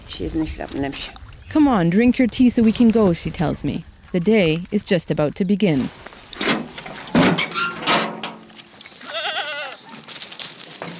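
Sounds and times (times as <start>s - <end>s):
shuffle and clattering of sheep hooves: 0.0s - 10.9s
speech: 0.2s - 6.2s
flock of sheep bleating as released from a side gate: 8.9s - 9.9s.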